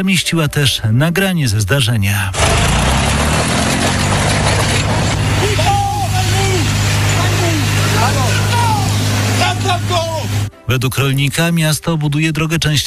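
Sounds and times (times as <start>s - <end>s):
speech: 0.0s - 4.4s, 10.7s - 12.8s
tractor engine running in Gliwice Poland: 2.3s - 10.5s
indistinct voices calling out: 2.4s - 10.5s.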